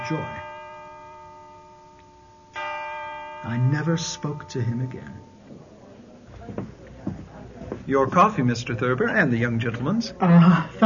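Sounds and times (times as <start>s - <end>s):
church bells ringing in a cacophony: 0.0s - 5.6s
speech: 0.1s - 0.4s, 3.4s - 5.3s, 7.9s - 10.8s.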